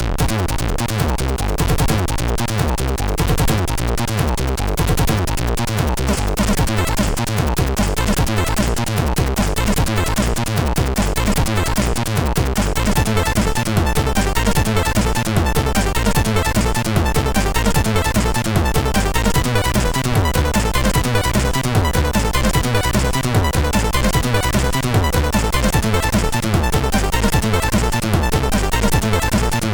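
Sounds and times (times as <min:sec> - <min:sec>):
techno on MOS6581R3 SID chip: 0:00.1 - 0:29.7.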